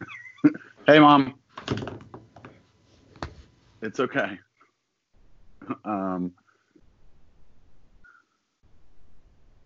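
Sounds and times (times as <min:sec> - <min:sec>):
speech: 0:00.4 - 0:01.8, 0:03.8 - 0:04.5, 0:05.7 - 0:06.4
front door thudding shut: 0:01.6 - 0:02.5.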